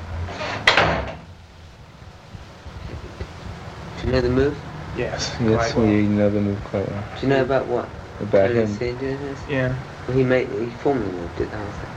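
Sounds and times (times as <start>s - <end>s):
door shutting with a solid thud and rattle: 0.3s - 1.3s
speech: 4.1s - 11.9s.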